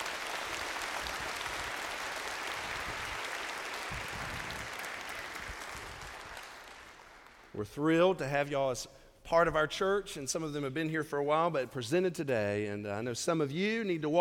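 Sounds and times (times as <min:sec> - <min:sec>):
room full of people applauding: 0:00.0 - 0:07.5
speech: 0:07.6 - 0:14.1.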